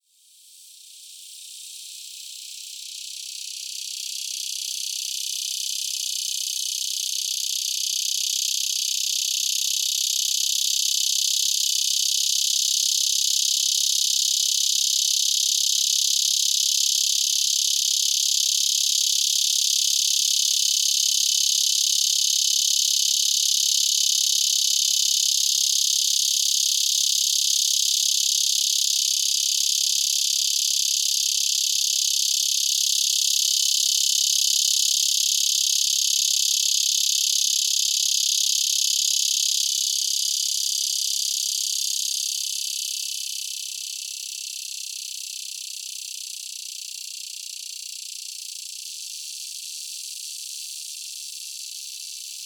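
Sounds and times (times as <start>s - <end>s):
Neotibicen dorsatus cicada song: 0.4s - 52.4s.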